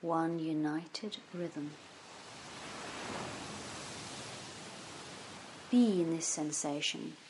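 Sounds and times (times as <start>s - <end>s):
speech: 0.0s - 1.9s, 5.7s - 7.2s
ocean surf: 1.6s - 7.2s.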